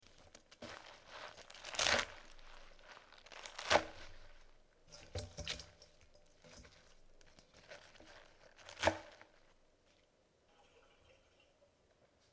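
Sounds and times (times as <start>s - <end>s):
cutting beet greens: 0.2s - 5.8s, 6.4s - 9.5s.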